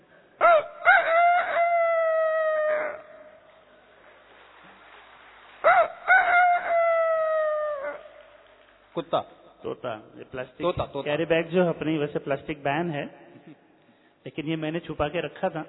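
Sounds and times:
human voice imitating a rooster crowing: 0:00.4 - 0:03.4, 0:05.6 - 0:08.2
speech: 0:09.0 - 0:13.6, 0:14.2 - 0:15.6.

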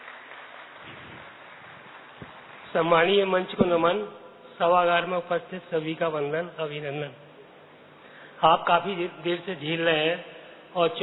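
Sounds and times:
audience applause in a hall at a poetry recital: 0:00.0 - 0:02.7
speech: 0:02.7 - 0:07.2, 0:08.4 - 0:11.0.

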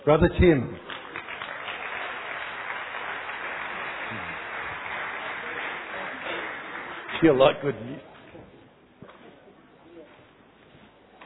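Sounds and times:
speech: 0:00.0 - 0:00.8, 0:07.2 - 0:08.1
crowd clapping: 0:00.6 - 0:07.9
faint murmur of voices: 0:03.8 - 0:11.2.

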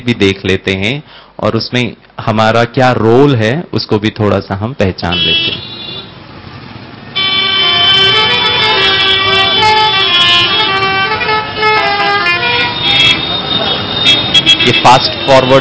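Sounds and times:
speech: 0:00.0 - 0:05.6, 0:14.6 - 0:15.5
steady road rumble of busy street traffic: 0:05.0 - 0:15.5
many car and vehicle horns honking in busy Indian street traffic: 0:05.1 - 0:06.2, 0:07.2 - 0:15.5.

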